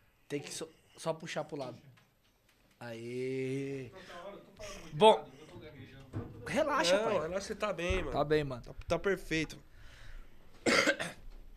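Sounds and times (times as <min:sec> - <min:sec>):
speech: 0:00.3 - 0:02.0, 0:02.8 - 0:09.7
cough: 0:10.6 - 0:11.3.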